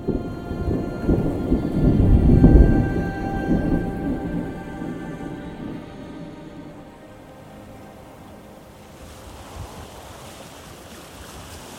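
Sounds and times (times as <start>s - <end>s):
long deep rumble of thunder: 0.0s - 7.0s
steady hiss of rain or wind: 0.0s - 11.7s.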